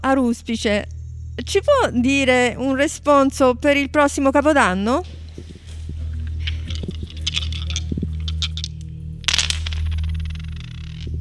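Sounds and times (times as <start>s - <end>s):
steady low hum: 0.0s - 11.1s
speech: 0.1s - 5.2s
special dice rolled to tell the future for New Year: 6.2s - 11.1s.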